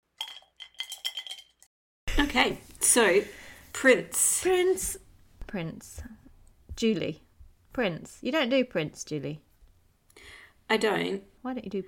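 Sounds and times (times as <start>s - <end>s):
paintbrushes clinking against a water glass: 0.2s - 1.7s
speech: 2.2s - 6.2s, 6.8s - 7.2s, 7.8s - 9.5s, 10.7s - 11.8s.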